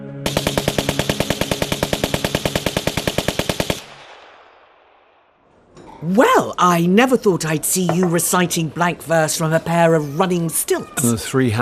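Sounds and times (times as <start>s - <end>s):
automatic gunfire of soldiers shooting in a stage play: 0.3s - 4.4s
speech: 6.0s - 11.6s.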